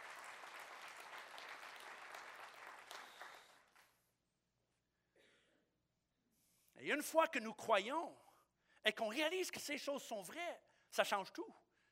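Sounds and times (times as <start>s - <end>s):
crowd applauding: 0.0s - 4.0s
speech: 6.8s - 8.2s, 8.8s - 11.6s.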